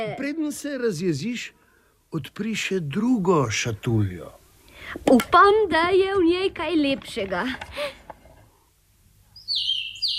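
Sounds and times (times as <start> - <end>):
speech: 0.0 - 8.0
small songbird singing: 9.3 - 10.1.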